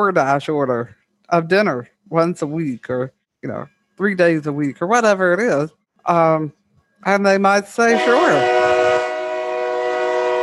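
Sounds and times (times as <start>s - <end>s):
speech: 0.0s - 8.6s
train horn blaring: 7.8s - 10.4s.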